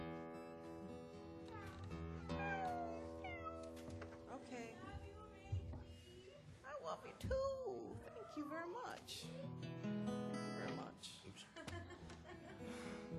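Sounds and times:
faint murmur: 0.0s - 13.1s
cat meowing: 2.2s - 3.8s
speech: 6.9s - 9.9s, 10.8s - 11.8s
laughter: 11.4s - 13.1s.

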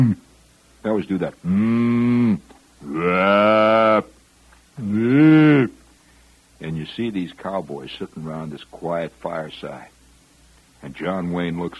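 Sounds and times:
speech: 0.8s - 4.1s, 4.8s - 5.8s, 6.6s - 10.0s, 10.8s - 11.7s
herd of cattle mooing at night: 1.5s - 4.0s.

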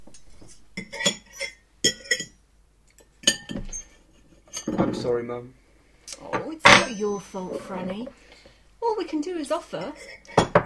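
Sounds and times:
cutlery clinking against plates at a family Sunday roast dinner: 0.4s - 2.4s, 3.0s - 4.9s, 6.6s - 7.2s, 9.8s - 10.6s
speech: 4.8s - 5.6s, 6.2s - 8.3s, 9.0s - 10.2s.

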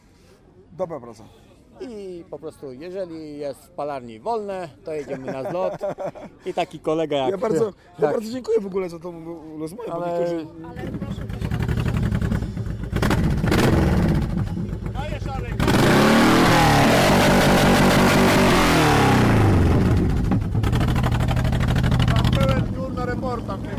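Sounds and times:
speech: 0.8s - 11.5s
laughter: 4.9s - 6.8s
Honda VTX 1800 motorcycle engine passing: 10.8s - 23.7s.

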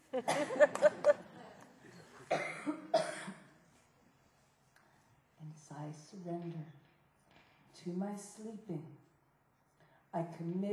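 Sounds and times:
laughter: 0.0s - 2.3s
speech: 0.1s - 0.9s, 7.8s - 9.0s, 10.2s - 10.7s
person coughing: 0.2s - 0.8s, 2.3s - 3.5s.

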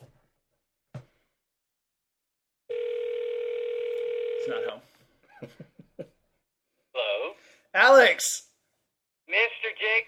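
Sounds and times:
buzzing telephone tone: 2.7s - 4.7s
speech: 4.5s - 6.2s, 7.7s - 8.5s, 9.3s - 10.0s.

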